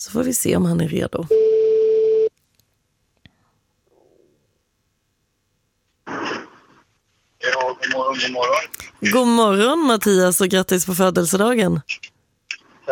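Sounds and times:
speech: 0.0s - 1.6s, 8.0s - 12.1s
telephone ringing tone: 1.3s - 2.3s.

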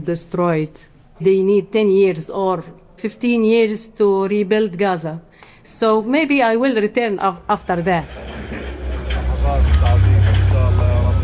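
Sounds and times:
speech: 0.0s - 8.4s
diesel earth movers grinding through rubble in Gaza City: 7.6s - 11.2s.

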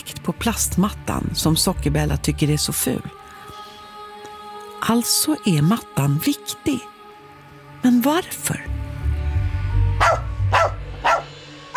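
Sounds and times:
speech: 0.2s - 3.2s, 4.8s - 6.9s, 7.8s - 8.7s
small poodle barking: 10.0s - 11.7s.

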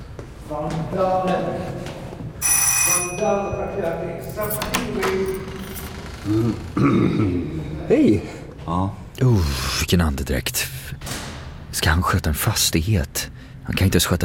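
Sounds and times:
hum: 0.0s - 14.2s
speech: 0.5s - 1.9s, 3.2s - 5.6s, 6.2s - 11.1s, 11.8s - 14.2s
electric doorbell ringing at an apartment building: 2.4s - 4.0s.

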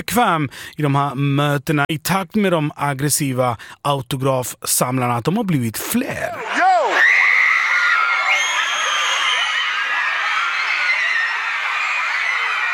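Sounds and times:
speech: 0.0s - 6.7s
dense crowd of fans shrieking and shouting at high pitch: 6.4s - 12.7s.

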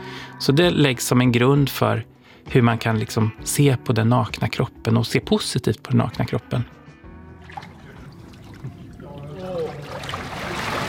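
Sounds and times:
speech: 0.4s - 6.8s
lake water sloshing and trickling around a microphone: 7.3s - 10.8s.

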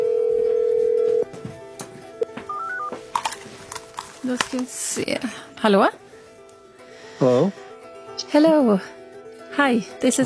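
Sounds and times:
telephone ringing tone of an outgoing call to Russia: 0.0s - 1.3s, 2.5s - 2.9s
speech: 4.3s - 6.0s, 8.3s - 9.0s, 9.6s - 10.2s.

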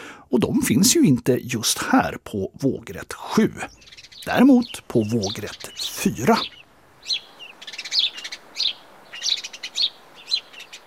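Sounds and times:
speech: 0.3s - 7.2s
house sparrow Passer domesticus chirping: 2.6s - 10.8s.

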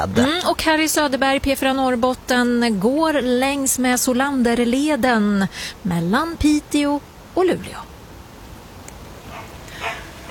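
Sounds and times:
speech: 0.0s - 7.9s
dog yipping and barking: 9.3s - 10.2s.

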